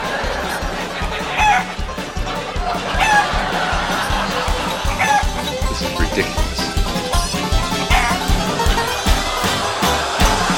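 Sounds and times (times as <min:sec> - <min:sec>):
large flock of chickens clucking: 0:00.0 - 0:10.5
laughter: 0:00.0 - 0:10.5
higher sharper chicken squawks: 0:00.9 - 0:01.8, 0:02.6 - 0:03.5, 0:04.4 - 0:05.4, 0:07.7 - 0:08.3.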